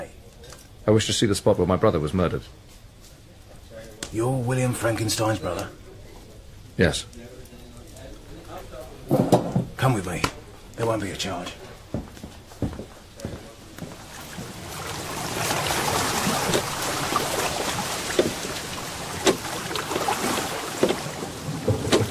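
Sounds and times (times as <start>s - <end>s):
speech: 0.8s - 2.6s, 4.1s - 5.8s, 6.8s - 7.4s, 9.8s - 11.7s
sharp irregular wooden knocks: 9.1s - 10.4s, 11.9s - 14.5s, 17.6s - 22.0s
boat wash of water crossing: 13.9s - 22.0s.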